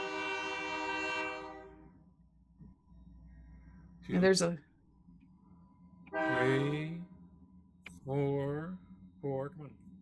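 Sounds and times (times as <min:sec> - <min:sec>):
train horn blast: 0:00.0 - 0:01.9, 0:06.1 - 0:07.0
low rumble of rail traffic: 0:00.0 - 0:09.9
speech: 0:04.1 - 0:04.7, 0:06.4 - 0:07.0, 0:08.0 - 0:09.8.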